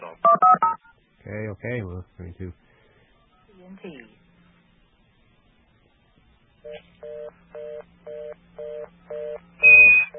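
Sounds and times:
touch-tone telephone keypad dialing beeps: 0.2 - 0.9, 9.6 - 10.1
speech: 1.3 - 2.7, 3.7 - 4.2.

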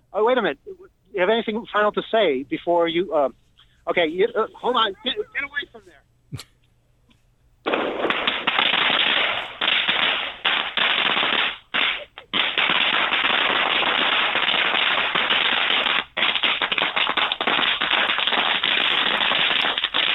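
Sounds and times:
speech: 0.2 - 5.7, 6.3 - 6.5
laughter: 4.0 - 5.9
long string of firecrackers exploding: 7.7 - 20.1.

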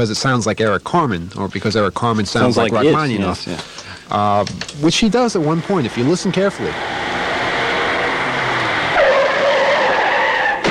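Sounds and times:
speech: 0.0 - 7.1
road traffic passing near a studio: 5.4 - 10.6.

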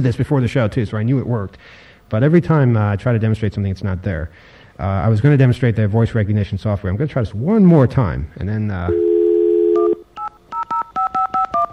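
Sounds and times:
speech: 0.0 - 9.1
telephone dial tone: 8.9 - 11.7.

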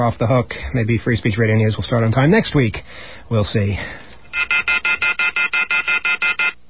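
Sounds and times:
speech: 0.0 - 5.0
telephone ringing in electronic warbling pulses: 4.3 - 6.6.

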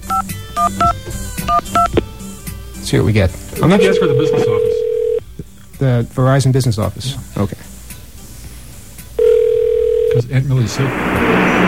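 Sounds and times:
touch-tone telephone keypad dialing beeps: 0.1 - 1.9, 3.6 - 5.2
speech: 0.2 - 2.0, 2.8 - 4.8, 5.8 - 7.7, 10.2 - 11.5.

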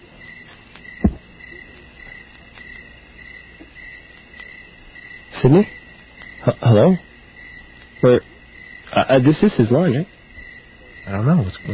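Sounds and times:
chorus of crickets chirping: 0.0 - 11.7
dull thump: 1.0 - 1.3
speech: 5.4 - 5.8, 6.4 - 7.1, 8.0 - 8.3, 8.9 - 10.2, 11.1 - 11.7.

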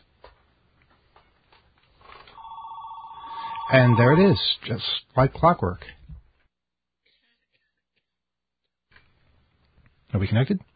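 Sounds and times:
telephone ringing with electronic ring tone: 2.4 - 4.6
speech: 3.7 - 6.0, 10.2 - 10.7.

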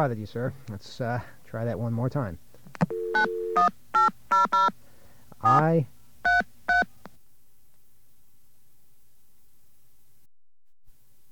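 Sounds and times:
speech: 0.0 - 4.8, 5.4 - 6.0
fake telephone dial tone: 2.9 - 4.7.

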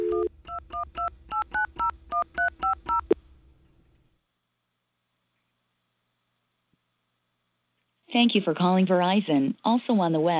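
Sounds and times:
touch-tone telephone dialing beeps: 0.0 - 3.2
speech: 8.2 - 10.3.

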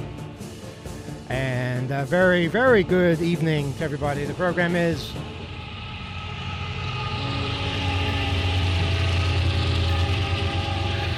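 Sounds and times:
freight train rumbling past in Ashland, Virginia: 0.4 - 11.1
speech: 1.3 - 5.4.

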